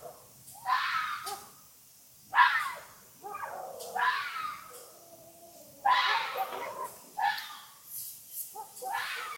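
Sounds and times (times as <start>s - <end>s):
fox giving hoarse rasping scream-like calls: 0.6s - 1.5s, 2.3s - 4.9s, 5.8s - 7.7s, 8.6s - 9.3s.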